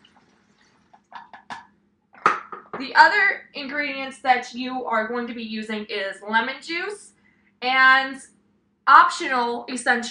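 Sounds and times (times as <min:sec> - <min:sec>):
witch hazel poured from a cup through a funnel into a bottle: 0:00.0 - 0:01.5
speech: 0:02.8 - 0:08.3, 0:08.9 - 0:10.0.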